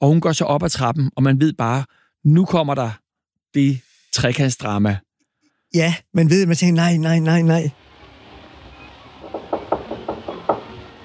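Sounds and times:
speech: 0:00.0 - 0:05.1, 0:05.7 - 0:07.8
woman knocking on a door: 0:09.2 - 0:11.0.

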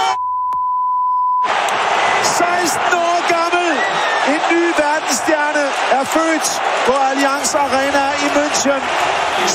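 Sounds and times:
steady mid-pitched censor bleep covering a spoken name: 0:00.2 - 0:01.4
loud dense broadcast sound: 0:01.4 - 0:09.5
speech: 0:06.4 - 0:09.5.

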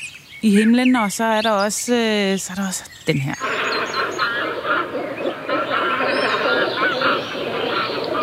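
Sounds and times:
speech: 0:00.4 - 0:04.3
chorus of cormorant calls: 0:03.0 - 0:08.2.

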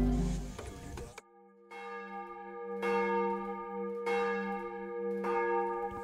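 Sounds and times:
large cathedral church bells ringing for morning service: 0:01.4 - 0:06.0.

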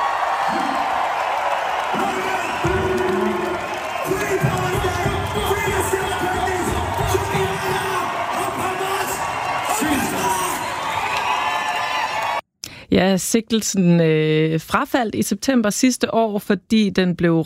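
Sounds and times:
concert crowd roaring and cheering: 0:00.0 - 0:12.4
performer's amplified voice shouting chant-like slogans at a rap concert: 0:01.9 - 0:10.7
speech: 0:13.0 - 0:17.4.

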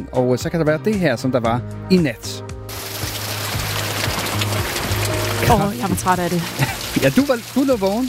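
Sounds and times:
speech: 0:00.0 - 0:03.0, 0:05.4 - 0:08.0
heavy rain downpour: 0:02.7 - 0:08.0.

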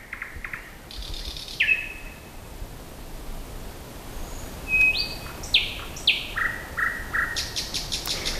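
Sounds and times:
nightingale singing outdoors at night around Søndersø: 0:00.0 - 0:02.4, 0:04.2 - 0:08.3
faint hiss: 0:00.0 - 0:08.3.

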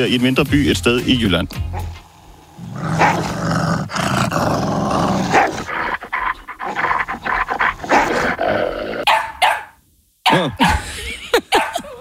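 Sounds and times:
speech: 0:00.0 - 0:01.9
wolf barking defensively: 0:01.7 - 0:02.0, 0:02.6 - 0:10.6, 0:11.5 - 0:11.9
wolf growling: 0:01.7 - 0:09.1
laughter: 0:10.6 - 0:11.9.

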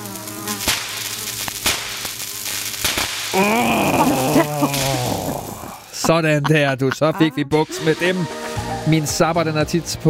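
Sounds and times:
insects buzzing indoors: 0:00.0 - 0:06.0
speech: 0:03.4 - 0:03.8, 0:06.1 - 0:10.0
laughter: 0:03.4 - 0:07.9.

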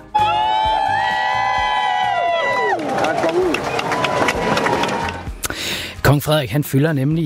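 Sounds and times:
large crowd cheering and shouting outdoors: 0:00.0 - 0:05.4
speech: 0:06.1 - 0:07.2.

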